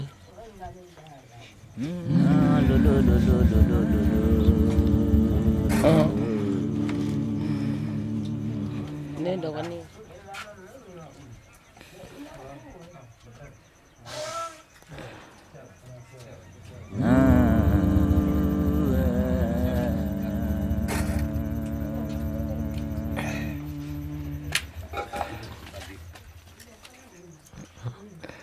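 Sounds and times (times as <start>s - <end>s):
feedback soundscape: 1.8s - 9.4s, 16.9s - 26.8s.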